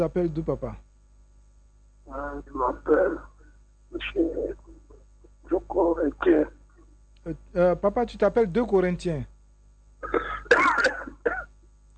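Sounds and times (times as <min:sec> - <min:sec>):
speech: 0:00.0 - 0:00.9, 0:02.1 - 0:03.3, 0:03.9 - 0:04.8, 0:05.5 - 0:06.6, 0:07.2 - 0:09.3, 0:10.0 - 0:10.6
ill man coughing: 0:10.0 - 0:11.5.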